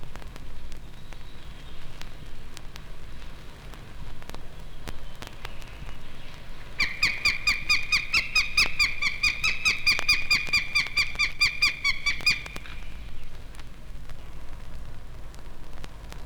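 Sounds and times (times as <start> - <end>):
faint ticks: 0.0 - 11.3, 12.1 - 16.2
northern goshawk giving harsh alarm calls: 5.6 - 13.4.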